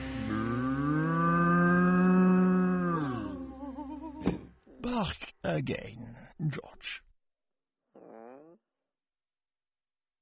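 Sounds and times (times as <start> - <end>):
cow mooing: 0.2 - 3.6
speech: 5.0 - 7.1.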